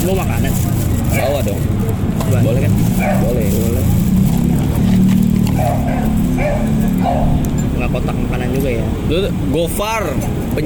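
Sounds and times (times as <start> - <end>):
speech: 0.0 - 4.1, 5.6 - 10.6
dog barking: 2.9 - 3.4, 5.4 - 7.6.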